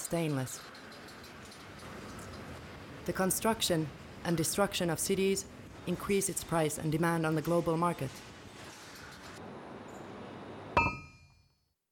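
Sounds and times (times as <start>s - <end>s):
speech: 0.1s - 0.8s, 3.1s - 8.3s
sharp metallic clink: 10.8s - 11.5s.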